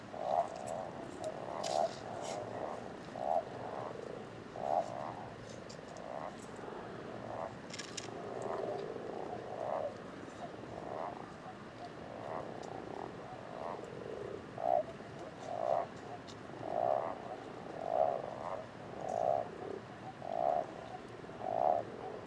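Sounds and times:
common toads Bufo bufo and common frogs Rana temporia croaking at a pond: 0.0s - 22.2s.

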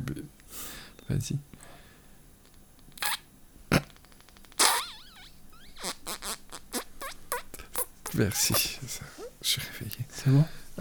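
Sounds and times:
speech: 1.1s - 1.5s, 8.2s - 10.7s
small kissing smacks on the forehead: 2.4s - 8.7s
squeaky chirping lip sounds: 2.5s - 9.3s.

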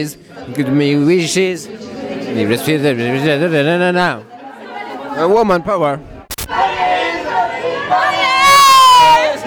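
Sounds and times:
speech: 0.0s - 4.3s, 5.2s - 6.6s
people yelling and wailing into a microphone at karaoke: 6.5s - 9.4s.

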